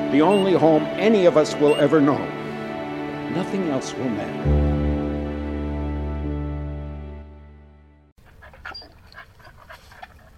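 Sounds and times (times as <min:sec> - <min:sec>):
sustained musical chord: 0:00.0 - 0:08.1
speech: 0:00.1 - 0:02.4, 0:03.3 - 0:04.9
dog panting: 0:08.2 - 0:10.3.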